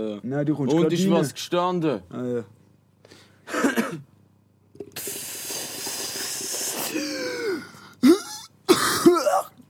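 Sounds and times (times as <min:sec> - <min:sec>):
speech: 0:00.0 - 0:04.1
person coughing into a microphone: 0:03.5 - 0:04.1, 0:07.2 - 0:09.6
raspy breath hiss: 0:05.0 - 0:08.3
throat clearing into a microphone: 0:06.9 - 0:09.6.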